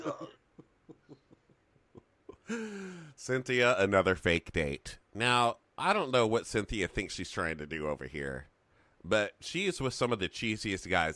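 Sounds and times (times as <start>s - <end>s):
speech: 0.0s - 0.4s, 2.5s - 11.1s
person coughing in a coughing fit: 0.0s - 0.5s.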